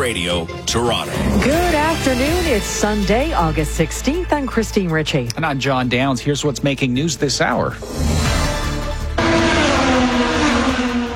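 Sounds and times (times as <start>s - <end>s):
speech: 0.0s - 8.4s
race cars roaring past on a track at the Honda Indy in Markham: 9.0s - 11.1s.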